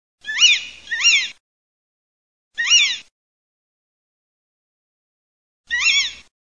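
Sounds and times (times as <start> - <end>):
little owl calling: 0.2 - 1.4, 2.6 - 3.1, 5.7 - 6.3.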